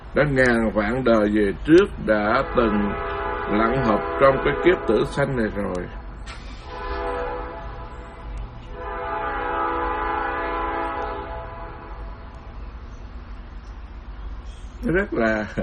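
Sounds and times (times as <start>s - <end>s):
low rumble of rail traffic: 0.0s - 15.6s
speech: 0.2s - 6.0s, 14.8s - 15.6s
train horn blasts: 2.2s - 12.4s.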